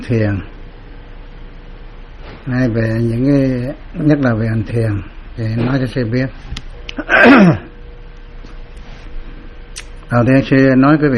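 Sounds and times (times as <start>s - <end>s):
speech: 0.1s - 0.5s, 2.4s - 7.7s, 10.1s - 11.1s
cough from a monk giving a Buddhist Dharma talk: 7.0s - 7.8s.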